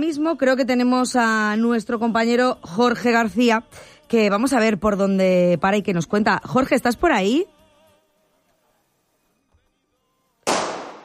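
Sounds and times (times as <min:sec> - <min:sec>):
speech: 0:00.0 - 0:07.6
firecracker bang: 0:10.5 - 0:11.0.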